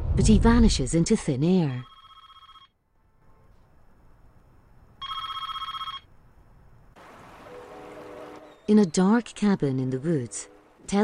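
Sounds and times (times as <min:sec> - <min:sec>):
speech: 0:00.2 - 0:01.9, 0:08.7 - 0:11.0
office telephone ringing with electronic warbling trill: 0:01.7 - 0:02.7, 0:05.0 - 0:06.1.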